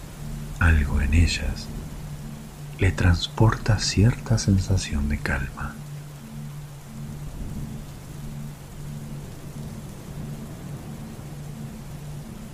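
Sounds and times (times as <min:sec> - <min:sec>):
low summer thunder rumbling: 0:00.0 - 0:12.5
steady dense summer rainfall: 0:00.0 - 0:12.5
speech: 0:00.6 - 0:01.9, 0:02.8 - 0:05.8.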